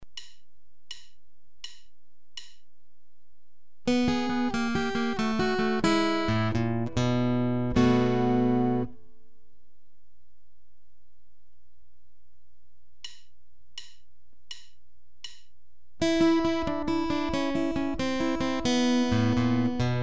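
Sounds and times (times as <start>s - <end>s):
blues turnarounds on guitar: 3.9s - 9.0s, 16.0s - 20.0s.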